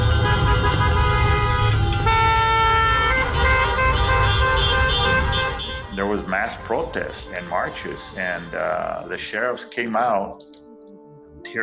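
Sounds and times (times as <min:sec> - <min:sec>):
low rumble of traffic: 0:00.0 - 0:09.1
car horns honking during a car caravan protest: 0:00.0 - 0:10.0
speech: 0:06.5 - 0:10.6, 0:11.4 - 0:11.6.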